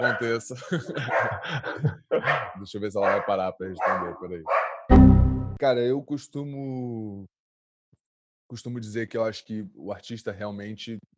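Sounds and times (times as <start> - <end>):
dog barking: 0.0 - 0.4, 1.0 - 1.5, 2.2 - 4.9
laughter: 0.0 - 2.5
speech: 0.0 - 4.7, 5.6 - 7.4, 8.5 - 11.1.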